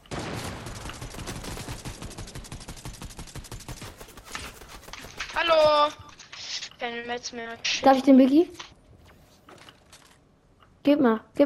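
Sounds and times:
gunfire in a ranked video game match: 0.0 - 6.0
speech: 5.4 - 6.0, 6.8 - 8.6, 10.8 - 11.3.

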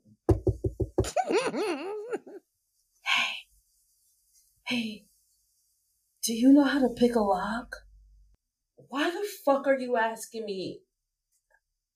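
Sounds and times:
knocking on a door: 0.3 - 1.2
laughter: 1.1 - 2.4
speech: 1.5 - 2.0, 4.7 - 5.1, 6.3 - 7.8, 8.9 - 10.8.

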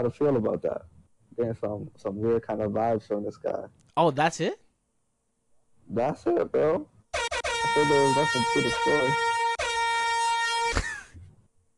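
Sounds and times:
speech: 0.0 - 4.6, 5.9 - 6.9, 7.7 - 9.3
loud air horn blast: 7.2 - 10.8.

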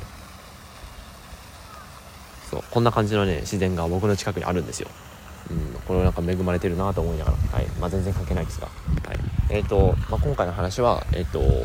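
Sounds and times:
blowing water spray outdoors: 0.0 - 11.6
waves rushing outdoors: 0.0 - 11.6
speech: 2.5 - 11.6
faint wind buffeting: 5.4 - 11.6.

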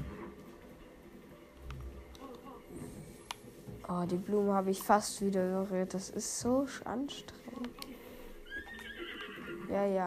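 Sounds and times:
speech: 3.9 - 7.8, 9.7 - 10.0
horse neighing in a drawn-out whinny: 8.4 - 9.8.

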